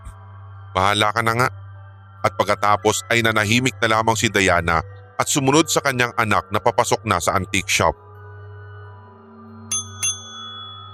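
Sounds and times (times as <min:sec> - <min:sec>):
speech: 0:00.8 - 0:01.6, 0:02.2 - 0:08.0
shop counter call bell ringing in an antique shop: 0:09.7 - 0:10.9.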